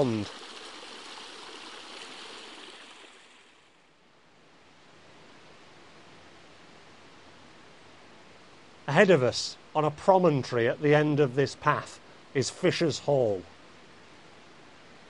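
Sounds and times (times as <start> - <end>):
speech: 0.0 - 0.5, 9.0 - 13.5
woodland stream flowing down towards a river: 0.0 - 4.0, 5.0 - 15.0.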